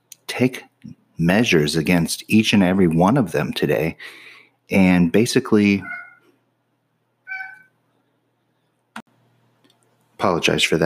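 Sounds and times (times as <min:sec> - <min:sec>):
speech: 0:00.4 - 0:06.0, 0:10.2 - 0:10.8
cat giving a short quiet meow: 0:05.8 - 0:06.3, 0:07.2 - 0:07.7.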